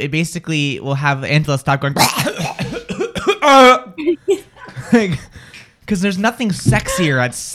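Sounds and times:
speech: 0:00.0 - 0:02.6, 0:03.4 - 0:05.3, 0:05.9 - 0:07.5
person imitating a coughing fit: 0:02.0 - 0:03.8
laughter: 0:03.9 - 0:05.5.

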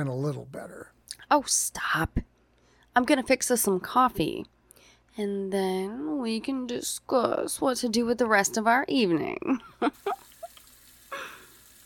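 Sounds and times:
speech: 0:00.0 - 0:02.3, 0:03.0 - 0:10.3
water dripping from a tap: 0:10.0 - 0:11.8.

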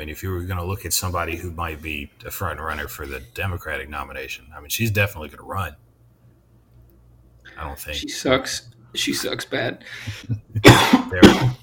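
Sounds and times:
speech: 0:00.0 - 0:05.8, 0:07.6 - 0:11.6
harsh coughs: 0:10.6 - 0:11.6.

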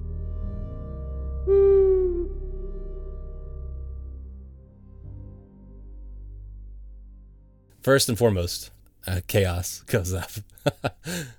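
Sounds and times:
low constant rumbling drone: 0:00.0 - 0:07.4
owl hooting: 0:01.5 - 0:02.7
speech: 0:07.8 - 0:11.3.

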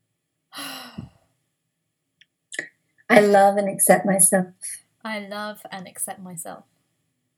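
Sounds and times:
big deep breath during a guided tapping exercise: 0:00.6 - 0:01.2
speech: 0:03.2 - 0:06.7.

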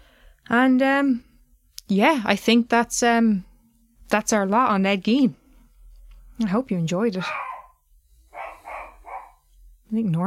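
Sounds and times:
speech: 0:00.5 - 0:01.3, 0:01.9 - 0:03.5, 0:04.1 - 0:05.4, 0:06.4 - 0:07.5, 0:09.9 - 0:10.2
pet dog barking: 0:07.2 - 0:09.4.

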